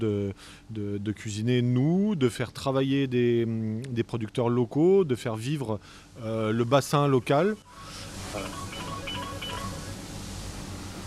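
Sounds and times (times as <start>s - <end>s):
speech: 0.0s - 8.7s
steady hum: 0.0s - 11.0s
telephone ringing with short electronic tone bursts: 7.7s - 10.0s.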